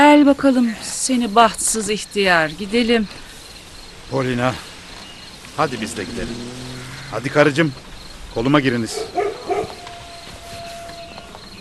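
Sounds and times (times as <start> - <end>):
speech: 0.2 - 3.3, 4.1 - 4.7, 5.6 - 9.8
guard dog barking near a grain barn: 8.9 - 9.8.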